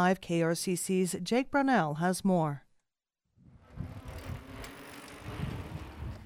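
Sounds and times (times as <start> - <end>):
speech: 0.0 - 2.6
bicycles whizzing past on a park road closed to cars: 3.4 - 6.2
low rumbling bicycle tire noise: 3.4 - 6.2
rush of wind: 3.4 - 6.2.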